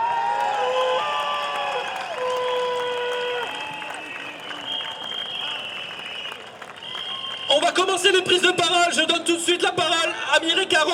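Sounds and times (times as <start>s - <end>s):
crowd applauding and cheering at a street demonstration against pension reform: 0.0s - 8.6s
speech: 7.7s - 10.9s.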